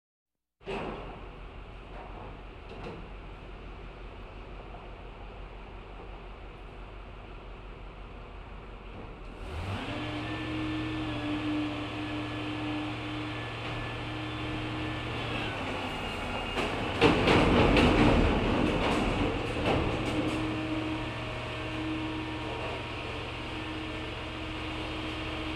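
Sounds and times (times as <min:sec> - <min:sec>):
garbage truck loading in a big city: 0:00.6 - 0:03.6, 0:08.8 - 0:25.5.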